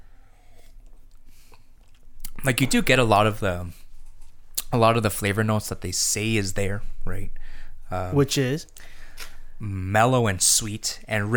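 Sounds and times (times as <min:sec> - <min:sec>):
slurping sips of hot coffee: 0:00.3 - 0:02.0
speech: 0:02.4 - 0:03.8, 0:04.7 - 0:11.3.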